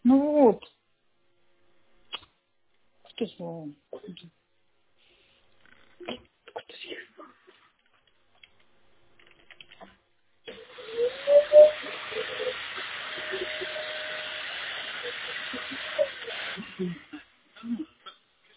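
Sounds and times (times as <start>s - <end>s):
speech: 3.2s - 4.5s
vacuum cleaner running: 10.5s - 17.1s.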